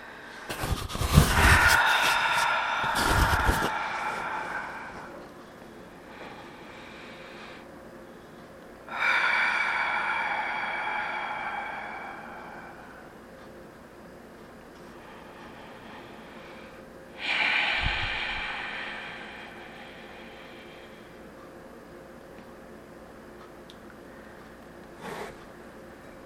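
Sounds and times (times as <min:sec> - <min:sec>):
long slow deep breaths taken with eyes closed: 0:00.0 - 0:13.2, 0:14.8 - 0:21.4.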